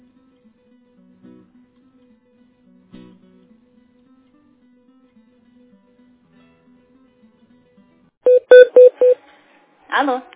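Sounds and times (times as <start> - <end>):
telephone keypad touch-tone dialing beeps as a call is transferred: 8.3 - 9.2.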